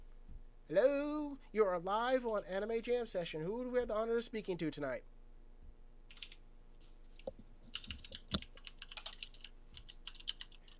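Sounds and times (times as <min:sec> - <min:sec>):
faint hum: 0:00.0 - 0:10.7
speech: 0:00.7 - 0:05.1
rapid uneven computer keyboard typing: 0:06.1 - 0:06.4, 0:07.2 - 0:10.7.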